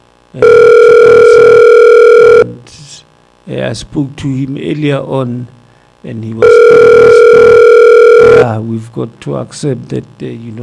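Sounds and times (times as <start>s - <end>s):
speech: 0.3s - 0.8s, 3.5s - 7.6s, 8.2s - 10.6s
telephone ringing on the line as a call is dialled: 0.4s - 2.5s, 6.4s - 8.5s.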